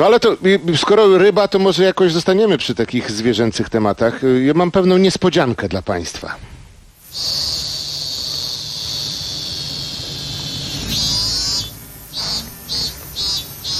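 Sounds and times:
speech: 0:00.0 - 0:06.5, 0:07.1 - 0:07.5
Japanese cicada song: 0:07.0 - 0:13.7.

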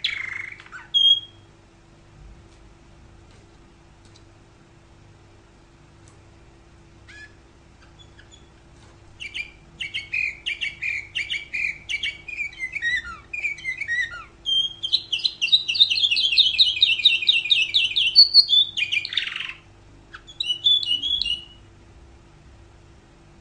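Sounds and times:
canary song: 0:00.0 - 0:01.6, 0:07.0 - 0:21.7.

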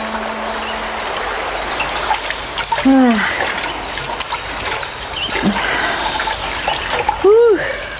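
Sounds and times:
water splashing and trickling as laundry is washed by hand: 0:00.1 - 0:07.9.

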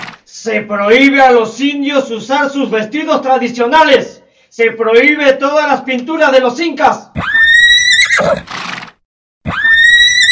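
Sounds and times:
horses neighing shrilly in a town plaza: 0:00.0 - 0:00.2, 0:07.2 - 0:08.9, 0:09.5 - 0:10.3
speech: 0:00.4 - 0:07.1, 0:08.2 - 0:08.6.

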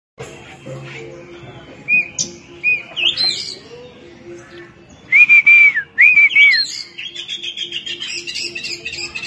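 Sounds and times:
Oriental magpie-robin singing short clear whistled phrases: 0:01.5 - 0:04.0, 0:04.9 - 0:09.2.

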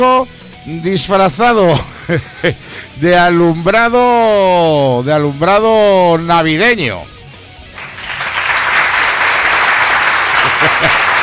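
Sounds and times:
speech: 0:00.0 - 0:07.2
laughter: 0:01.7 - 0:02.6, 0:10.0 - 0:11.2
audience applause: 0:07.8 - 0:11.2.

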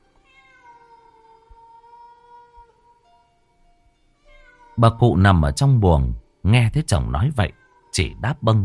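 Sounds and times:
stray cats yowling: 0:00.3 - 0:03.0, 0:04.2 - 0:05.1, 0:07.5 - 0:08.2
speech: 0:04.8 - 0:08.6.

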